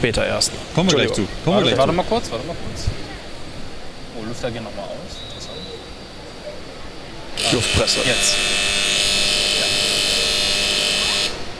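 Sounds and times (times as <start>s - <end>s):
speech: 0.0s - 3.0s, 4.2s - 5.3s, 7.4s - 8.8s
railway platform departure signal electronic buzz: 7.4s - 11.5s.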